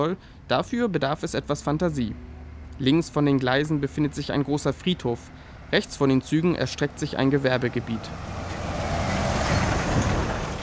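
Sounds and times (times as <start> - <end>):
speech: 0.0 - 8.4
heavy lorries thundering toward a slag factory entrance beside rail tracks: 0.0 - 10.6.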